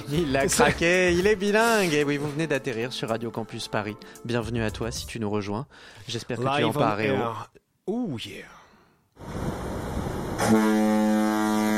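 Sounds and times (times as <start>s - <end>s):
speech: 0.1s - 8.6s, 10.4s - 10.9s
rushing rumbling wash of noise: 9.2s - 10.5s
ship foghorn blast: 10.4s - 11.7s.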